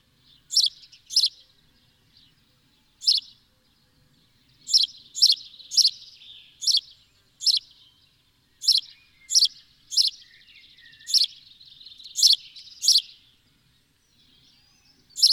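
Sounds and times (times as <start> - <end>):
house sparrow soft chatter: 0.0 - 15.3
house sparrow Passer domesticus chirps: 0.2 - 3.5, 4.2 - 13.4, 14.0 - 15.3.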